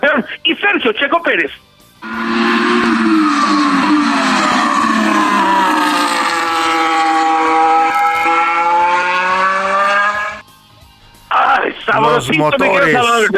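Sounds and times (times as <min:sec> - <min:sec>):
speech: 0:00.2 - 0:02.8, 0:11.9 - 0:13.3
Formula 1 race car engine revving: 0:02.0 - 0:10.5.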